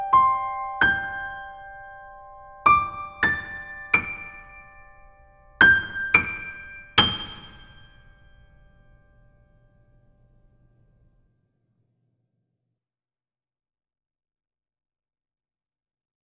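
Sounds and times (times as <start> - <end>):
high note on a Bosendorfer piano with ivory keys: 0.1 - 10.7.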